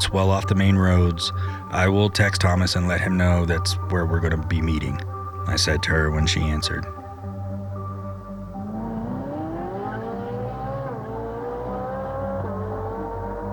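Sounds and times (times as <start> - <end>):
speech: 0.0 - 7.0
car driving fast with engine revving: 8.4 - 13.5.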